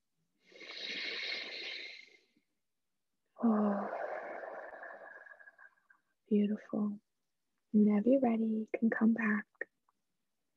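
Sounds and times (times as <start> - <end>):
deep breath in and out in a guided breathing exercise: 0.4 - 2.4, 3.4 - 5.8
speech: 6.3 - 7.0, 7.7 - 9.7.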